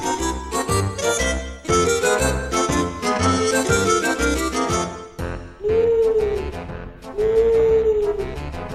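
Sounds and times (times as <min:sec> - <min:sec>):
busy dense music: 0:00.0 - 0:08.7
owl hooting: 0:05.6 - 0:06.4, 0:07.2 - 0:08.2.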